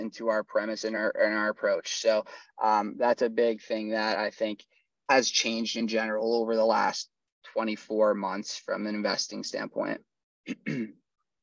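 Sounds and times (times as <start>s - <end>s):
speech: 0.0s - 11.0s
person clearing throat during a mild coughing fit: 10.4s - 11.1s.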